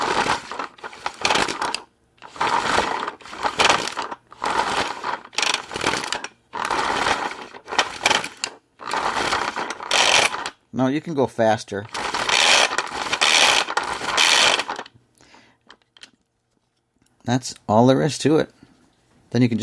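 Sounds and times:
empty pull-cord food chopper blade whirring: 0.0 - 10.6, 11.9 - 14.9
speech: 10.8 - 12.0, 17.3 - 18.6, 19.3 - 19.6.

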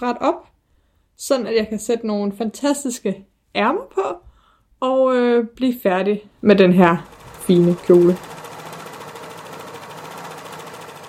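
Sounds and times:
speech: 0.0 - 0.5, 1.2 - 8.3
sewing machine stitching fabric: 6.8 - 11.0.

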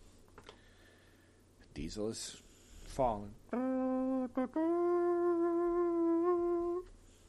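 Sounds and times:
speech: 1.8 - 5.3
voice imitating a trumpet with a brassy buzzing tone: 3.5 - 6.9.

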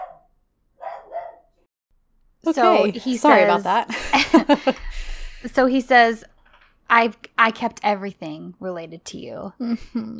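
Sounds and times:
dogs barking: 0.0 - 1.6
speech: 2.4 - 6.3, 6.9 - 10.1
laughter: 3.6 - 5.2.

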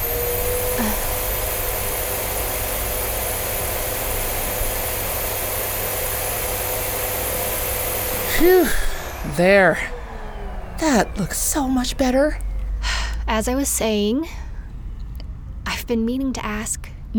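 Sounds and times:
vacuum cleaner running on carpet: 0.0 - 13.3
speech: 8.4 - 8.8, 9.4 - 9.9, 10.8 - 12.4, 13.3 - 14.4, 15.9 - 17.1.

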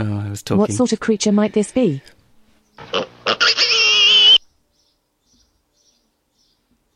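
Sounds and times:
speech: 0.0 - 2.2
pig squealing: 2.8 - 4.4.

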